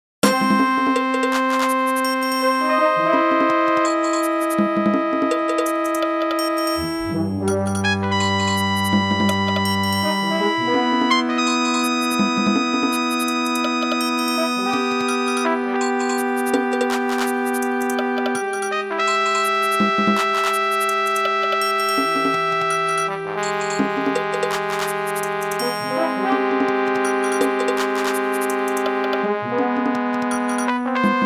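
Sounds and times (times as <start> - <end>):
brass in fifteen-tone equal temperament: 0.2 - 31.2
percussion medley: 0.2 - 31.2.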